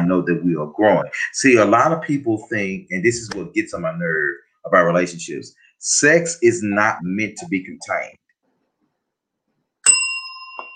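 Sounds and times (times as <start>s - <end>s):
speech: 0.1s - 8.2s
bright metallic bell struck: 9.8s - 10.7s.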